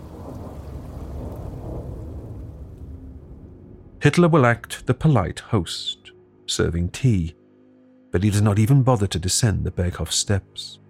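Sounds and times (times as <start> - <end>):
rain pouring: 0.0 - 4.7
low thunder rumbling: 0.0 - 4.9
speech: 4.0 - 7.4, 8.1 - 10.8.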